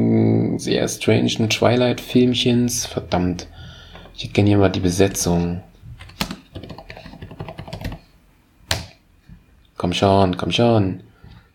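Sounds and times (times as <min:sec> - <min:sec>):
speech: 0:00.6 - 0:05.7, 0:09.9 - 0:11.1
computer clicking: 0:06.0 - 0:08.0
keyboard typing: 0:06.0 - 0:08.1.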